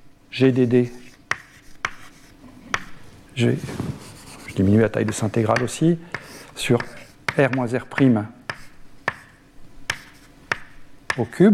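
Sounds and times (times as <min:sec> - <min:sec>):
speech: 0:00.4 - 0:01.0, 0:03.4 - 0:03.8, 0:04.6 - 0:08.4, 0:11.2 - 0:11.5
pen taps and strokes handwriting a denominator in a maths derivation: 0:01.3 - 0:03.0, 0:05.0 - 0:11.3.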